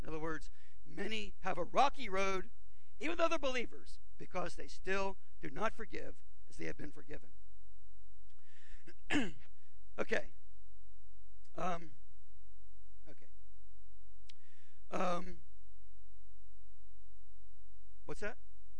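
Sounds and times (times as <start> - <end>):
speech: 0.4 - 7.4, 8.8 - 9.4, 10.0 - 10.4, 11.6 - 12.0, 14.9 - 15.5, 18.1 - 18.5
person clearing throat: 8.9 - 9.5.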